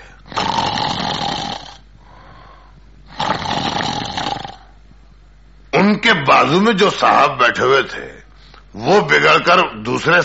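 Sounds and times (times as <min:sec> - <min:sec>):
voice imitating loud snoring of a man asleep: 0:00.3 - 0:01.8, 0:03.1 - 0:04.7
speech: 0:06.1 - 0:08.2, 0:08.8 - 0:10.2.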